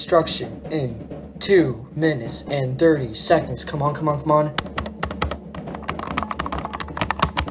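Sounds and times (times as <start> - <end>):
speech: 0.0 - 4.8
typing a password on a computer keyboard: 4.6 - 7.4.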